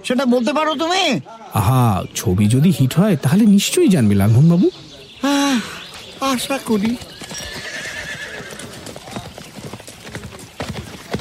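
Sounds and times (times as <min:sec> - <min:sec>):
speech: 0:00.0 - 0:07.5
horses galloping with clip-clop hoofbeats on a film set: 0:05.7 - 0:11.2
horse neighing loudly: 0:07.0 - 0:09.2.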